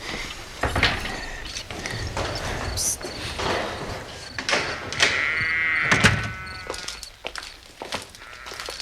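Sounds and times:
dull thuds: 0.0 - 7.2
shuffling footsteps: 0.0 - 8.8
heavy wooden stable door creaking open: 0.4 - 8.8.

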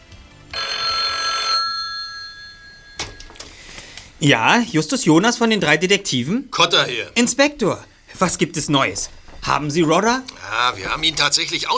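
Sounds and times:
telephone ringing with a trilling bell tone: 0.5 - 3.7
speech: 4.2 - 11.7.

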